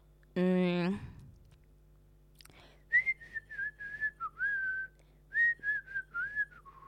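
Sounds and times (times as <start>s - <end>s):
person whistling a tune from a common commercial: 2.9s - 6.8s.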